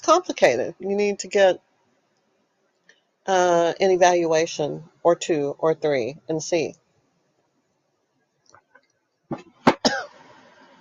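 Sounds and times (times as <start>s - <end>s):
speech: 0.1s - 1.7s, 3.2s - 6.8s
person with a lingering cough coughing: 9.6s - 10.2s.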